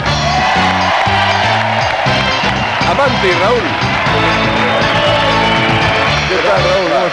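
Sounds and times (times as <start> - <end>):
fanfare: 0.2 - 7.1.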